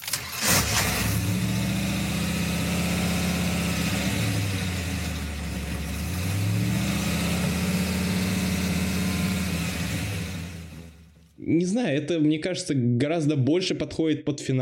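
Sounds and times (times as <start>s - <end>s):
car engine cranking and catching: 0.0s - 11.4s
speech: 11.5s - 14.6s.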